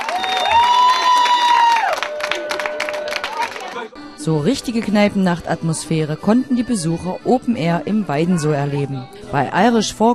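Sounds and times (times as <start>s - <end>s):
crowd clapping: 0.0s - 3.9s
speech: 4.2s - 10.1s.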